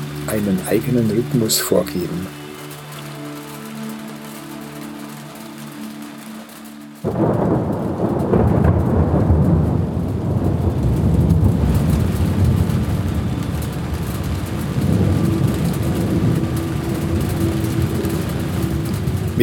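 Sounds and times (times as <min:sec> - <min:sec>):
heavy rain in the Himalaya, India, heard from a herders' shelter hut: 0:00.0 - 0:19.4
speech: 0:00.3 - 0:02.4
deep rolling thunder in the Himalaya, India: 0:07.0 - 0:19.4.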